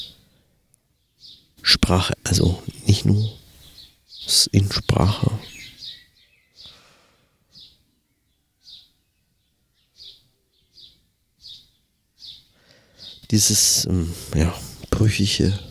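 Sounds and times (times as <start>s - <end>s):
birds singing: 1.0s - 6.9s, 7.5s - 15.6s
speech: 1.7s - 3.4s, 4.3s - 5.6s, 13.3s - 15.6s.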